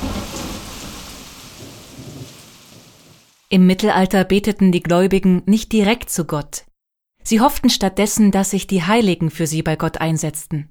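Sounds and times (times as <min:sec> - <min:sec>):
heavy rain: 0:00.0 - 0:03.5
low thunder rumbling: 0:00.0 - 0:03.5
speech: 0:03.5 - 0:10.6.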